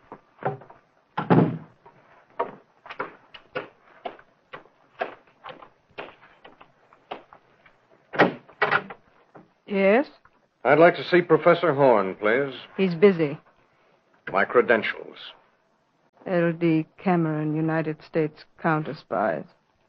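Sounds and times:
door being opened and shut: 0:01.2 - 0:01.8, 0:08.1 - 0:09.0
speech: 0:09.7 - 0:13.4, 0:14.3 - 0:15.4, 0:16.2 - 0:19.6.

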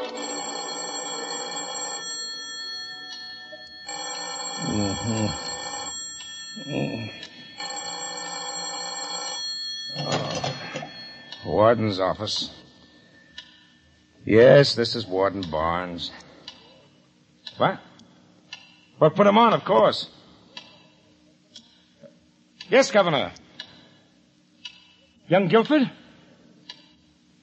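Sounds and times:
telephone bell ringing in a warden's office: 0:00.1 - 0:12.1
speech: 0:11.6 - 0:12.6, 0:14.3 - 0:16.3, 0:17.6 - 0:17.9, 0:19.0 - 0:20.2, 0:22.7 - 0:23.4, 0:25.3 - 0:25.9.

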